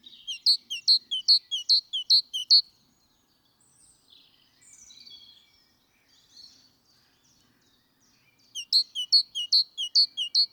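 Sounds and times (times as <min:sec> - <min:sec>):
great tit Parus major calls: 0:00.0 - 0:02.6, 0:08.6 - 0:10.5.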